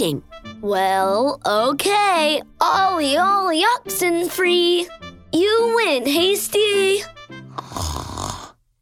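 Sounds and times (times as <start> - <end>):
speech: 0.0 - 8.0
soft snoring: 7.5 - 8.6.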